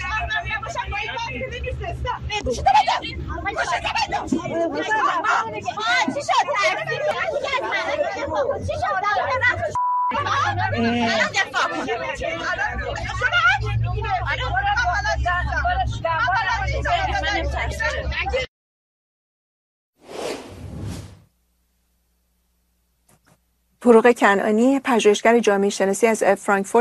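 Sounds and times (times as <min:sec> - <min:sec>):
steady low engine rumble of a moving city bus: 0:00.0 - 0:18.3
several people talking and arguing loudly inside a moving city bus: 0:00.0 - 0:18.5
speech: 0:02.1 - 0:07.2, 0:23.9 - 0:26.7
whoosh: 0:20.0 - 0:21.3.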